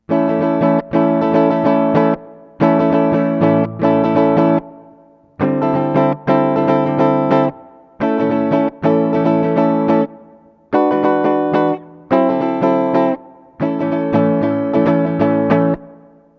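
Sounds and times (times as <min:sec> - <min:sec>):
guitars with reverb pedal effects: 0:00.0 - 0:16.3.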